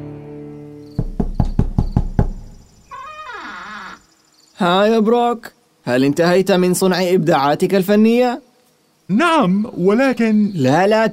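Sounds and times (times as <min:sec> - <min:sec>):
loud knocks on a wooden workshop door: 0:00.9 - 0:02.8
wavering squeaky tone bending downward: 0:02.9 - 0:04.0
speech: 0:04.6 - 0:08.5, 0:09.1 - 0:11.1.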